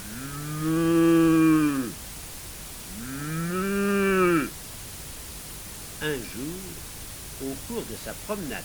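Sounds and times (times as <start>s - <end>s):
cow mooing: 0.0s - 2.0s, 2.9s - 4.6s
speech: 0.6s - 0.9s, 6.1s - 6.8s, 7.4s - 8.6s.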